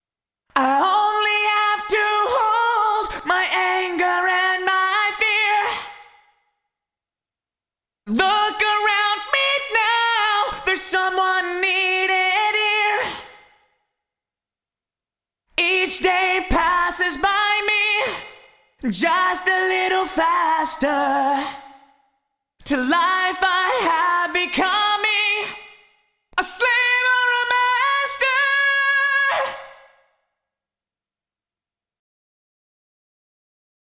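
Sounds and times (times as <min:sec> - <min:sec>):
vocal through Korg DRV 2000 small hall reverb: 0:00.6 - 0:06.5, 0:08.1 - 0:13.8, 0:15.6 - 0:30.3.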